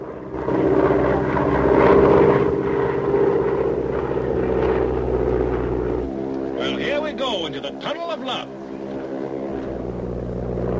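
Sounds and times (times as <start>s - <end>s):
small plane propeller engine droning over rocks and into a canyon: 0.0s - 10.7s
man speaking: 6.6s - 8.5s.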